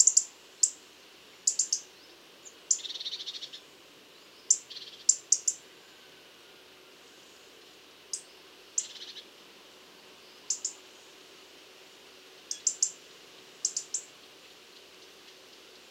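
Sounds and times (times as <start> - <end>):
European robin Erithacus rubecula calls: 0.0 - 0.8, 1.4 - 3.7, 4.3 - 5.6, 8.1 - 9.3, 10.3 - 10.8, 12.4 - 13.0, 13.6 - 15.8
soft background hiss: 0.0 - 15.8.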